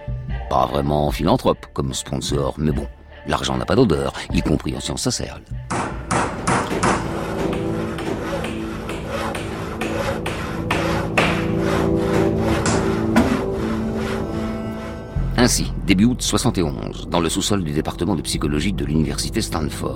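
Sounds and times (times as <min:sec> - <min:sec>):
speech: 0:00.5 - 0:05.8, 0:15.4 - 0:19.9
steady low hum of work noise: 0:05.7 - 0:14.5
hammering while building a mock prison in a basement: 0:05.7 - 0:14.8.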